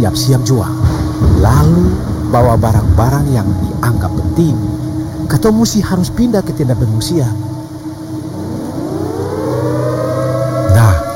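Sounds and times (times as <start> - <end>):
speech: 0.0 - 7.5
warning siren wailing: 3.6 - 11.1.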